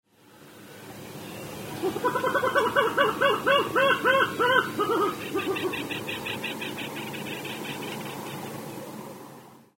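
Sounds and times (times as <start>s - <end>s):
singing: 1.2s - 8.9s.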